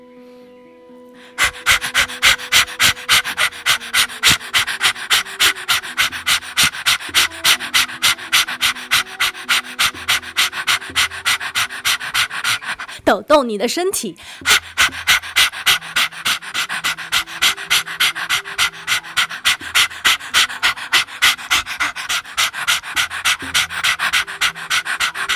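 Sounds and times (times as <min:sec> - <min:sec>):
soft sustained tones: 0:00.0 - 0:01.4
rapid forceful exhalations of breath-of-fire breathing exercise: 0:01.2 - 0:13.1, 0:14.2 - 0:25.3
speech: 0:13.2 - 0:14.6.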